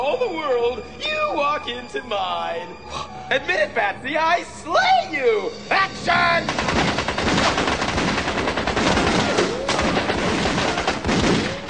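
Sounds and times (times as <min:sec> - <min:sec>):
speech: 0:00.2 - 0:06.9
guns firing blank rounds in rapid automatic bursts: 0:06.5 - 0:11.6.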